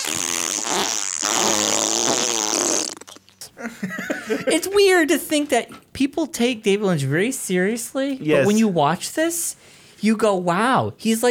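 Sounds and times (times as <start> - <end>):
cartoon fart sound effect: 0.0 - 3.4
laughter: 3.6 - 4.6
speech: 3.8 - 11.2.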